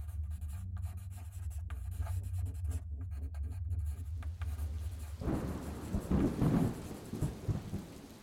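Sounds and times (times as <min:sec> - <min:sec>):
pen nib scratching across a blank page: 0:00.0 - 0:06.2
rain: 0:04.5 - 0:08.2
low steady storm rumble: 0:04.6 - 0:08.2
roll of thunder: 0:05.0 - 0:08.2.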